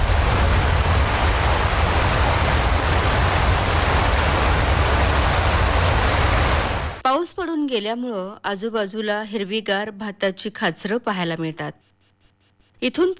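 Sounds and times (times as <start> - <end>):
waterfall roaring beside a cave-like spot behind the falls: 0.0 - 7.0
speech: 7.4 - 11.9, 12.8 - 13.1.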